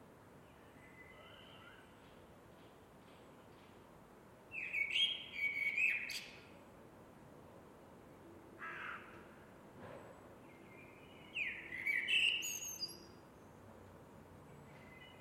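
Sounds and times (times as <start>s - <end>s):
steady background hiss: 0.0s - 15.2s
Eurasian blackbird song: 0.4s - 2.2s, 4.5s - 6.6s, 10.4s - 13.7s, 14.4s - 15.2s.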